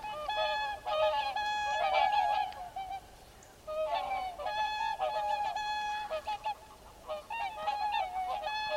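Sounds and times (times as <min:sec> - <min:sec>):
mute swan honking: 0:00.0 - 0:08.7.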